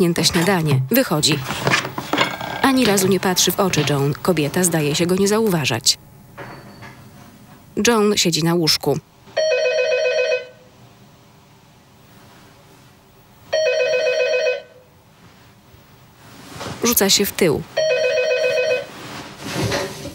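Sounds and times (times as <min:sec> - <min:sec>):
speech: 0:00.0 - 0:01.8, 0:02.6 - 0:06.2, 0:07.8 - 0:09.1, 0:16.9 - 0:17.9
telephone ringing with bright electronic harmonics: 0:02.0 - 0:04.8, 0:09.4 - 0:10.6, 0:13.5 - 0:14.8, 0:17.8 - 0:19.0.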